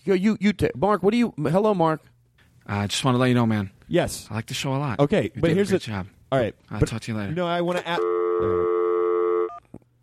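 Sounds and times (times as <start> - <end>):
speech: 0.0 - 8.7
loud steady electronic phone tone: 7.9 - 9.7.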